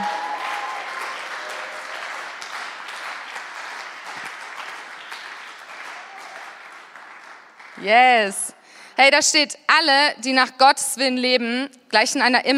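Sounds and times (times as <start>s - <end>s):
crowd applauding: 0.0s - 7.8s
speech: 7.8s - 12.5s.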